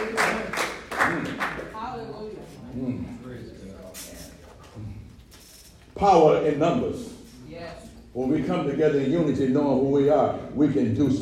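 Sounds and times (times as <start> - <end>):
audience applause in a reverberant hall: 0.0 - 1.7
speech: 6.0 - 7.1, 8.2 - 11.1.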